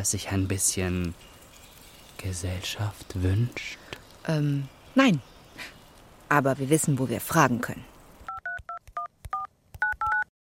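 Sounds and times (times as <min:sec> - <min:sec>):
speech: 0:00.0 - 0:01.3, 0:02.2 - 0:07.9
telephone keypad dual-tone beeps: 0:08.3 - 0:10.3.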